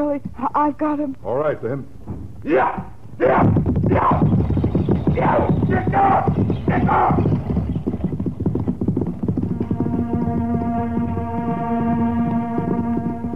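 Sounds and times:
speech: 0:00.0 - 0:04.5, 0:05.2 - 0:07.3, 0:10.0 - 0:12.1
horses galloping pulling a buckboard wagon: 0:00.0 - 0:13.3
buckboard wagon rumbling rattle: 0:02.0 - 0:13.3
sustained droning tone: 0:09.4 - 0:13.3.

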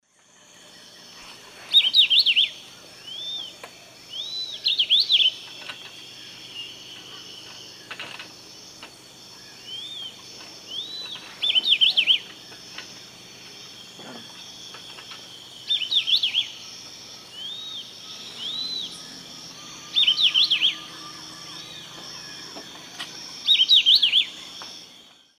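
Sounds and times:
Hylophilus hypoxanthus song in Eastern Lowlands of South America: 0:00.0 - 0:25.3.

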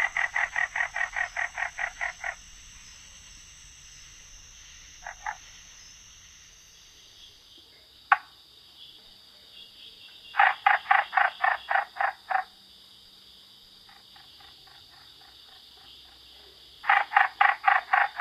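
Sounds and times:
Florida bog frog chucking: 0:00.0 - 0:02.4, 0:05.0 - 0:05.4, 0:10.3 - 0:12.5, 0:16.8 - 0:18.1.

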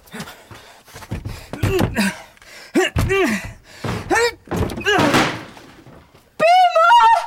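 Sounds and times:
heavy thuds of a door being battered and forced open: 0:01.1 - 0:02.2, 0:03.0 - 0:06.0
people grunting and gasping: 0:01.2 - 0:06.0
speech: 0:01.7 - 0:02.2.

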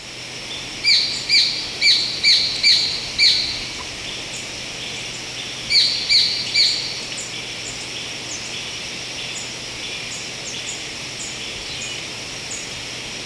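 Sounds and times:
steady high insect-like hum: 0:00.0 - 0:13.2
Black-billed treehunter harsh squawky call series in Ecuador: 0:00.9 - 0:03.9, 0:05.7 - 0:07.0.

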